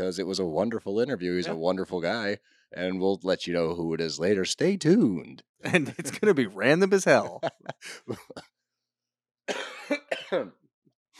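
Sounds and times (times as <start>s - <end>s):
speech: 0.0s - 8.5s, 9.5s - 10.6s
laughter: 5.6s - 8.4s
person coughing: 7.6s - 8.4s, 9.5s - 10.6s
throat clearing: 7.9s - 8.4s, 9.5s - 10.6s.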